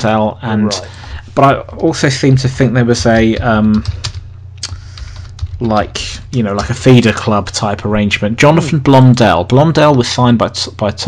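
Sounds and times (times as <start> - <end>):
speech: 0.0 - 4.1, 5.6 - 11.0
low hum: 0.0 - 11.0
typing on a computer keyboard during an online search: 3.0 - 5.7.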